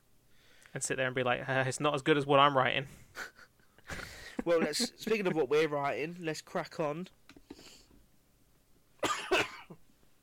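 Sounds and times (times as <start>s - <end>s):
speech: 0.7s - 3.4s, 4.4s - 7.2s
harsh raspy coughs: 9.0s - 9.8s.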